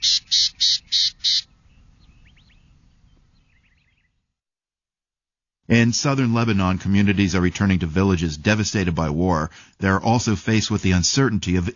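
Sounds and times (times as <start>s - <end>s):
gnatcatcher calls: 0.0s - 2.7s
speech: 5.7s - 11.7s.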